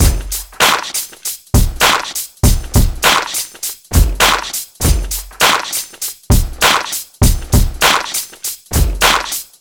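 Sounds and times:
kick drum tuned to the G note: 0.0s - 0.8s, 1.6s - 3.1s, 3.9s - 5.6s, 6.3s - 7.9s, 8.7s - 9.4s
100 bpm drum loop in G key: 0.0s - 9.5s.

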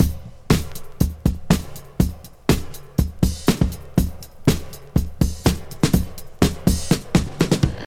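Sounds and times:
122 bpm modern breakbeat in D sharp: 0.0s - 7.8s.

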